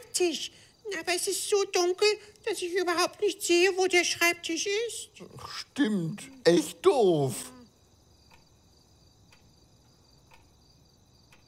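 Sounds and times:
faint hiss: 0.0 - 11.4
speech: 0.2 - 7.5
alarm clock ticking: 6.1 - 7.6.

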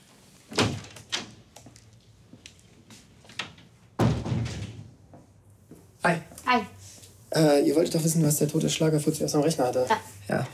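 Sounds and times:
door shutting with a loud resonant slam: 0.5 - 1.3, 4.0 - 4.9
door clunking and rattling: 3.3 - 4.9
speech: 6.0 - 6.7, 7.4 - 10.5.

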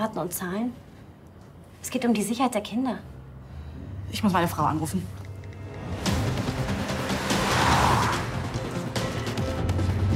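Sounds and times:
speech: 0.0 - 0.9, 1.8 - 3.1, 4.1 - 5.2
car driving with engine rumble, road and wind noise: 5.3 - 9.1.

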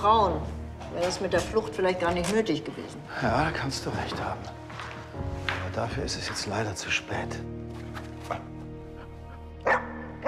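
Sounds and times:
speech: 0.0 - 4.6, 5.2 - 8.5
dog barking: 9.6 - 10.2.

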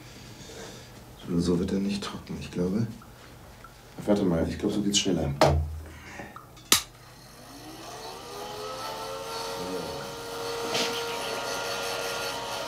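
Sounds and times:
speech: 1.3 - 3.1, 4.0 - 5.7
hair dryer blowing: 7.2 - 12.6.

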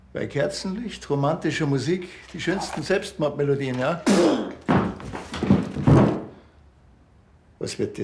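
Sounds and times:
speech: 0.1 - 4.6, 7.7 - 8.0
person falling over onto the floor: 4.2 - 6.4.

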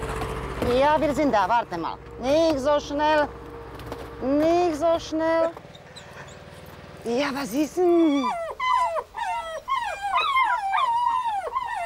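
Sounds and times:
speech: 0.6 - 3.4, 4.2 - 5.6, 7.0 - 8.4
puppies whimpering and yipping in greeting to an older dog: 7.8 - 11.8.

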